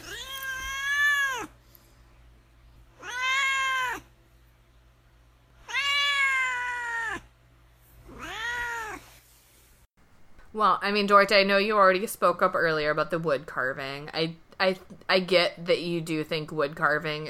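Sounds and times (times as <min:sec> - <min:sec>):
cat meowing: 0:00.0 - 0:01.5, 0:03.0 - 0:04.1, 0:05.6 - 0:07.3, 0:08.1 - 0:09.1
faint steady hum: 0:00.0 - 0:17.2
speech: 0:10.6 - 0:17.2.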